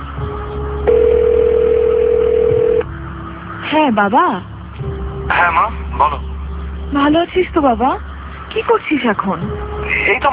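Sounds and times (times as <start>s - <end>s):
steady electronic telephone tone as a phone call is placed: 0.9s - 2.9s
speech: 3.8s - 4.5s, 5.3s - 6.3s, 6.9s - 10.3s.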